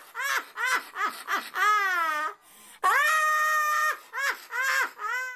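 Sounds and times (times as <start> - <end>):
person laughing: 0.1 - 2.3, 3.8 - 5.3.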